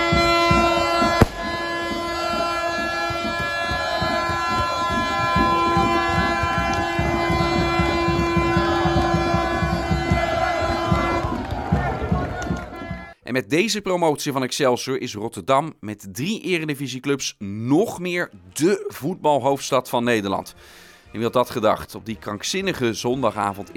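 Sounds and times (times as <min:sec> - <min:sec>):
sustained horn-like tones: 0:00.0 - 0:13.2
firework bang outdoors: 0:00.1 - 0:06.2
noisy crowd: 0:00.5 - 0:13.2
fireworks set off by celebrating fans popping and crackling: 0:00.6 - 0:08.6
speech: 0:13.4 - 0:23.7.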